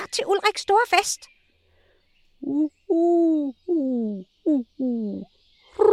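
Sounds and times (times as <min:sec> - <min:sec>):
speech: 0:00.1 - 0:01.4, 0:02.4 - 0:05.9
doves perched in a tree cooing: 0:02.4 - 0:05.9.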